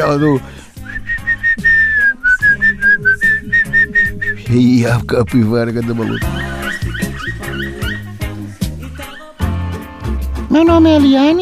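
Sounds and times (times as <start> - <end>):
speech: 0.0 - 1.1, 4.5 - 6.5, 10.6 - 11.3
clear whistled melody: 0.0 - 5.0, 5.8 - 9.5
laughter: 5.5 - 9.3.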